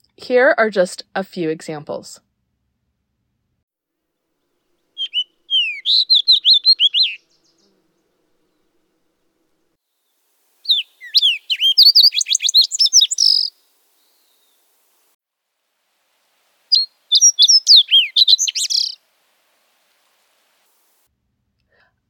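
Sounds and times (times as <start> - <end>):
speech: 0.2 - 2.3
fox sparrow singing: 4.8 - 8.7, 10.6 - 14.9, 16.7 - 19.1.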